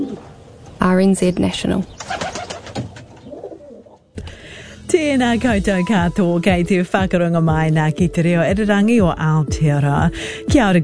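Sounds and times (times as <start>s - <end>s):
rock pigeon cooing: 0.0s - 0.4s, 2.1s - 4.0s
speech: 0.0s - 2.2s, 5.0s - 10.8s
wing flutters or scuffles: 2.0s - 3.9s.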